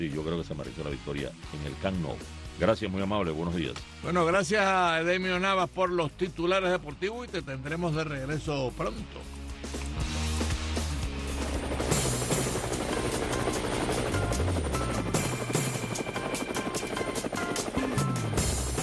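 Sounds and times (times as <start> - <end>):
speech: 0.0 - 9.8
helicopter rotor blades chopping: 10.0 - 18.8.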